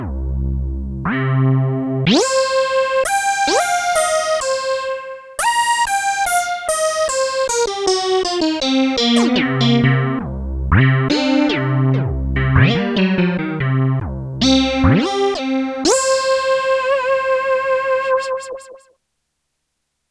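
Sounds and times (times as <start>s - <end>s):
Korg DW-8000 synthesizer portamento: 1.1s - 18.9s.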